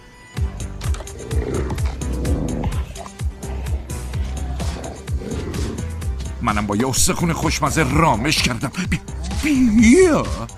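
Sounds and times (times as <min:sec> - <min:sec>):
wild wolf growling and snarling: 0:00.6 - 0:06.4, 0:07.7 - 0:09.5
speech: 0:06.5 - 0:10.5.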